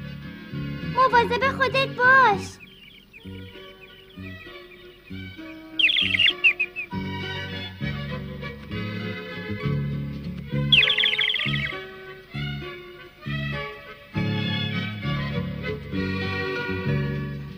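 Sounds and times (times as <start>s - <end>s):
gentle sustained music: 0.0s - 17.5s
speech: 1.0s - 2.6s, 3.2s - 3.6s
small bird chirping as it is set free from a cage: 2.2s - 7.1s, 10.6s - 12.0s.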